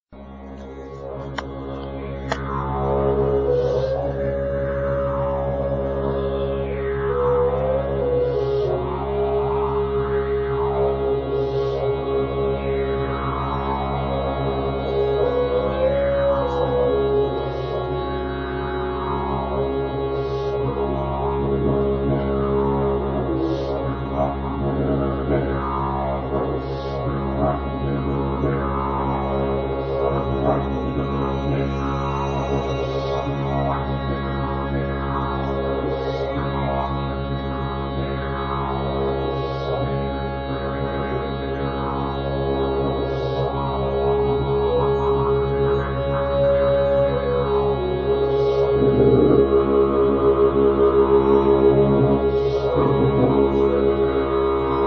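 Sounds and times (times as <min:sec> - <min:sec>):
didgeridoo: 0:00.0 - 0:54.8
shruti box drone: 0:00.0 - 0:54.8
flute: 0:00.2 - 0:54.8.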